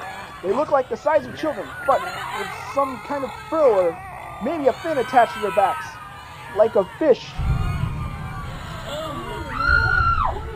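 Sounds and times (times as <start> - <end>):
crowd screaming in panic: 0.0 - 10.5
laughter: 0.0 - 10.5
speech: 0.4 - 5.9, 6.5 - 7.5
low steady rumble: 7.4 - 10.5.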